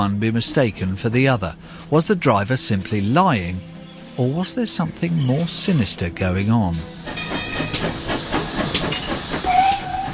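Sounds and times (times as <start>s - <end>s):
speech: 0.0s - 8.0s
steam locomotive hissing at a railway centre: 0.0s - 10.1s
steam locomotive clanks: 7.1s - 10.1s.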